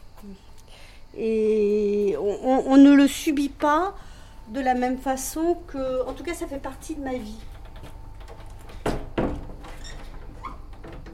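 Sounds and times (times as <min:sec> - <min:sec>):
faint murmur of room noise: 0:00.0 - 0:11.1
speech: 0:00.2 - 0:07.5
wooden door being shut: 0:07.4 - 0:11.1.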